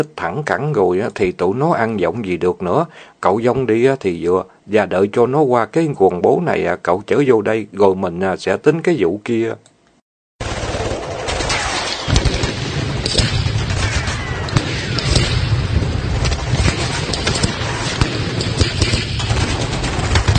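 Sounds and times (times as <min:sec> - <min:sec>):
speech: 0:00.0 - 0:09.7
machine-gun warning fire sweeping over banana leaves: 0:10.4 - 0:20.3.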